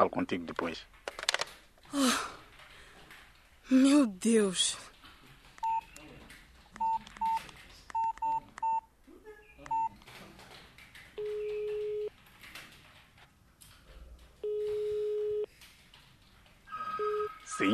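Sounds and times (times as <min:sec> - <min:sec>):
speech: 0:00.0 - 0:01.0, 0:01.9 - 0:02.4, 0:03.7 - 0:04.9
faint noise: 0:00.0 - 0:17.7
long steady mobile phone ringing tones: 0:05.6 - 0:05.9, 0:06.8 - 0:07.4, 0:08.0 - 0:08.9, 0:09.7 - 0:09.9, 0:11.2 - 0:12.1, 0:14.4 - 0:15.5, 0:16.7 - 0:17.7
mobile phone keypad beeps: 0:05.6 - 0:05.9, 0:06.8 - 0:08.9, 0:09.6 - 0:09.9, 0:11.2 - 0:12.1, 0:14.4 - 0:15.5, 0:16.7 - 0:17.7.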